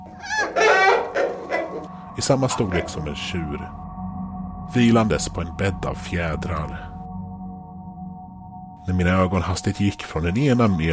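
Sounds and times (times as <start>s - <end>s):
hen clucking and squawking: 0.1s - 1.9s
speech: 2.2s - 3.9s, 4.7s - 6.9s, 8.8s - 10.9s.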